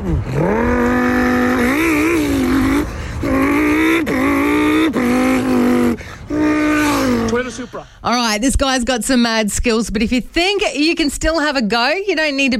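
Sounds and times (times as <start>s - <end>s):
voice imitating a Lamborghini Huracan launch-control start: 0.0s - 7.7s
speech: 0.1s - 0.8s, 7.7s - 12.5s.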